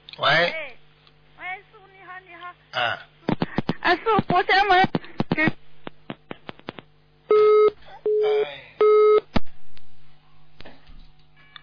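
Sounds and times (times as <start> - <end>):
telephone line hum: 0.0 - 11.6
speech: 0.2 - 0.6
telephone busy tone after dropped call: 7.3 - 9.2.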